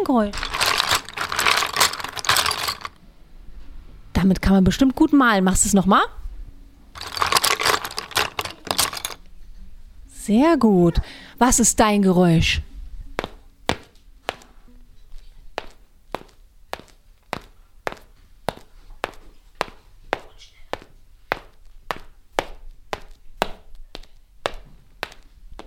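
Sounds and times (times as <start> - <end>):
speech: 0.0 - 0.5, 4.2 - 6.2, 10.3 - 12.7
footsteps of someone walking: 0.3 - 2.9, 7.0 - 9.2, 13.2 - 25.6.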